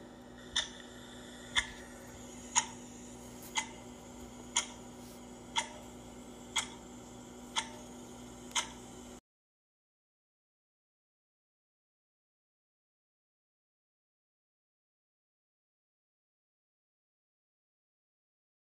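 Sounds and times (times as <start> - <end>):
faint low hum: 0.0 - 9.2
clock ticking: 0.2 - 9.2.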